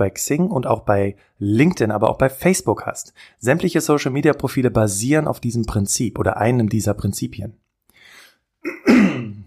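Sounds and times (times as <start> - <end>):
speech: 0.0 - 9.3
quiet breath: 3.1 - 3.4, 7.9 - 8.5
throat clearing: 8.6 - 9.4.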